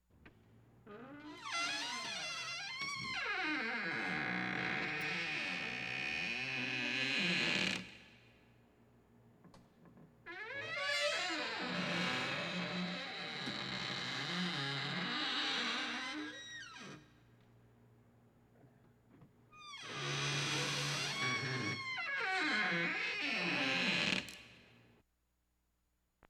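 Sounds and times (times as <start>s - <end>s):
door squeaking: 0.9s - 7.8s, 10.3s - 17.0s, 19.6s - 24.4s.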